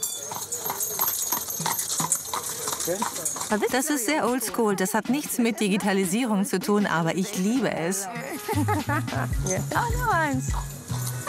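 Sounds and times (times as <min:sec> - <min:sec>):
horse hooves clip-clopping on a paved street: 0:00.0 - 0:06.9, 0:09.1 - 0:11.2
speech: 0:02.9 - 0:10.7
laughter: 0:08.0 - 0:09.8.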